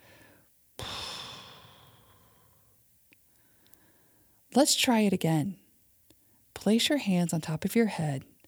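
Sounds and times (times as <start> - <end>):
air blown through pressed lips mimicking a deflating balloon: 0.8 - 2.4
speech: 4.5 - 5.6, 6.6 - 8.3.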